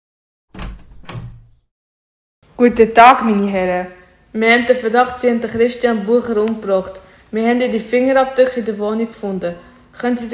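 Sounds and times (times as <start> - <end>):
door latch click: 0.5 - 1.6
speech: 2.6 - 10.3.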